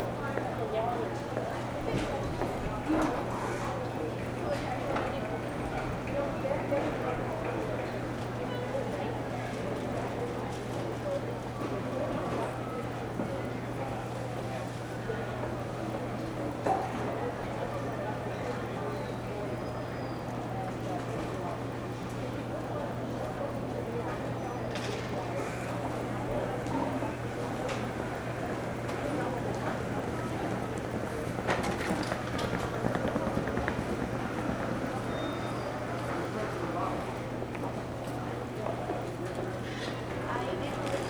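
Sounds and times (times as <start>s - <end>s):
GO Transit train terminal ambience in Toronto: 0.0s - 41.0s.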